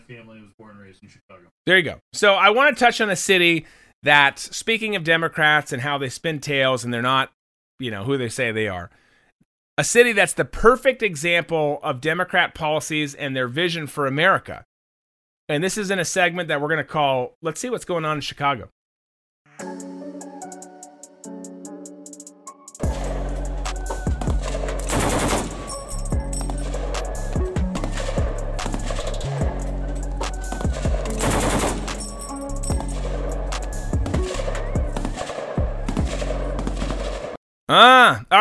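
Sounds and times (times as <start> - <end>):
speech: 0.1 - 9.0, 9.8 - 14.7, 15.5 - 18.8, 37.7 - 38.4
brief tonal musical intro: 19.5 - 36.4
rapid repeated gunfire in dense bursts: 23.7 - 29.4, 30.2 - 37.4.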